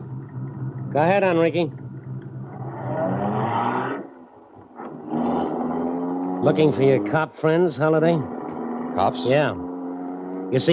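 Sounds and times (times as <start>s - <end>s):
car engine roaring and revving as it accelerates: 0.0s - 10.7s
speech: 0.9s - 1.8s, 6.4s - 8.4s, 9.0s - 9.7s, 10.5s - 10.7s.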